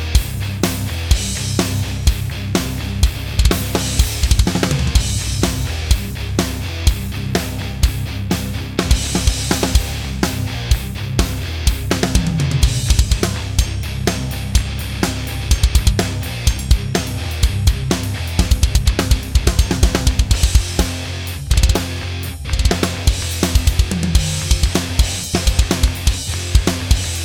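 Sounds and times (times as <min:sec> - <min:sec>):
low Premier 22 birch kick drum: 0:00.1 - 0:22.0, 0:22.5 - 0:27.2.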